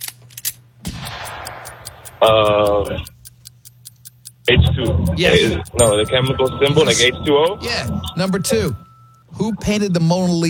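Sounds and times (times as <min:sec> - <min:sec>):
quiz countdown timer ticking: 0:00.9 - 0:09.9
speech: 0:02.2 - 0:03.1, 0:04.5 - 0:10.4
loud brief buzzy tone: 0:04.5 - 0:09.6.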